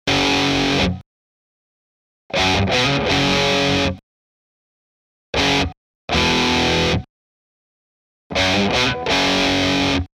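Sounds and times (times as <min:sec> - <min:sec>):
amplified guitar denoised by phase inversion: 0:00.1 - 0:01.0, 0:02.3 - 0:04.0, 0:05.4 - 0:07.1, 0:08.3 - 0:10.1.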